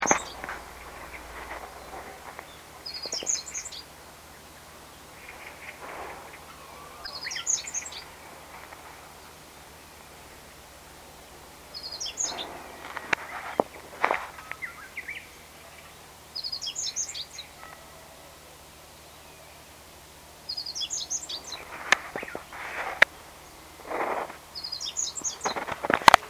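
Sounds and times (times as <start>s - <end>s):
meadow bunting calling: 0.0s - 26.2s.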